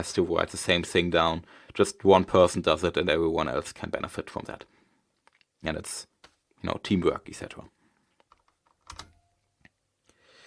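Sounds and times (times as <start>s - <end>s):
speech: 0.0s - 4.8s, 5.6s - 7.8s
quiet computer keyboard typing: 8.2s - 9.3s.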